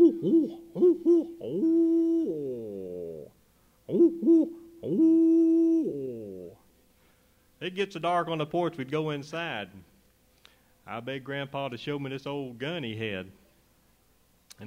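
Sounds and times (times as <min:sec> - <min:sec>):
big hoot owl hooting: 0:00.0 - 0:06.6
speech: 0:07.7 - 0:09.9, 0:10.9 - 0:13.4.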